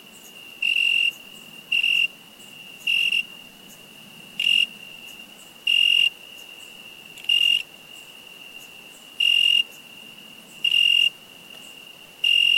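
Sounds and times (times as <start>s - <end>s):
cricket chirping: 0.0s - 12.5s
faint background hiss: 0.0s - 12.5s.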